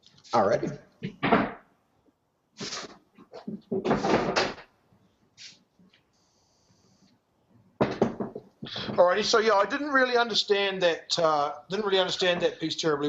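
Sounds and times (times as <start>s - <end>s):
speech: 0.3s - 1.5s, 9.0s - 13.0s
chair being swapped and shifted with clunks and scrapes: 2.6s - 4.7s, 7.8s - 9.1s.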